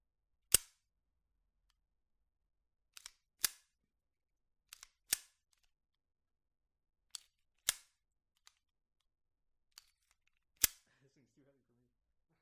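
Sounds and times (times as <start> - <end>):
pistol slide with heavy recoil spring released and clacking: 0.5 - 0.9, 2.9 - 3.8, 4.7 - 5.8, 7.1 - 8.7, 9.7 - 10.8.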